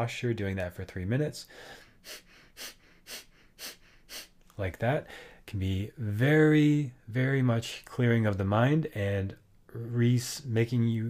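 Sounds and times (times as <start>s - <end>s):
speech: 0.0s - 3.8s, 4.6s - 11.0s
forceful nasal exhales of Kapalabhati breathing: 1.5s - 4.4s.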